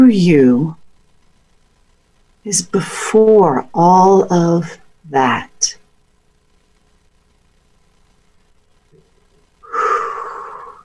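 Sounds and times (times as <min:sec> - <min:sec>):
speech: 0:00.0 - 0:00.8, 0:02.4 - 0:05.8
deep breath inhale: 0:09.6 - 0:10.8.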